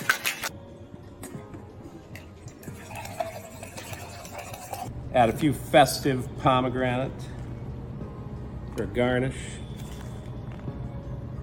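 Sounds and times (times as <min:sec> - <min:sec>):
ice rattling in a cocktail shaker while a cocktail is mixed: 0:02.6 - 0:04.9
speech: 0:05.2 - 0:07.3, 0:08.8 - 0:09.6.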